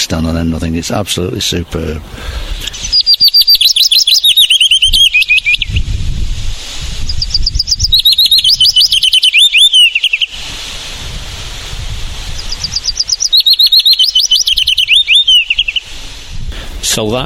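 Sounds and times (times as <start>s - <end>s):
speech: 0.0s - 3.6s, 17.0s - 17.2s
willow warbler singing: 2.7s - 5.9s, 7.1s - 10.4s, 12.4s - 15.9s.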